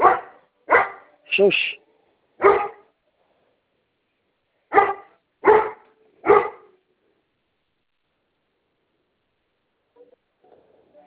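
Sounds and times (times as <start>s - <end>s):
dog barking at home during a phone call: 0.0s - 1.2s, 2.4s - 2.9s, 4.7s - 6.8s
speech: 1.4s - 1.8s.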